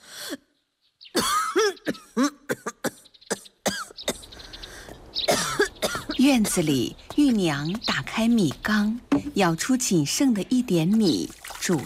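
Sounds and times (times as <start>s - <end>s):
elderly woman coughing in a rough raspy fit: 1.2s - 4.3s, 5.3s - 6.2s
speech: 6.3s - 11.8s.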